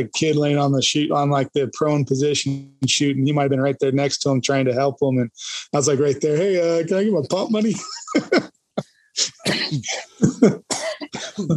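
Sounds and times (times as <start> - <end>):
speech: 0.0 - 11.5
laughter: 5.2 - 8.5, 9.2 - 11.5
harsh raspy fit of coughing: 7.6 - 8.5, 9.2 - 11.5.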